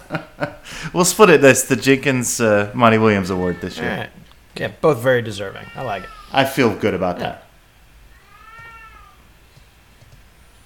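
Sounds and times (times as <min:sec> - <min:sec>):
speech: 0:00.1 - 0:07.5
cat meowing: 0:05.5 - 0:06.5, 0:08.1 - 0:09.3.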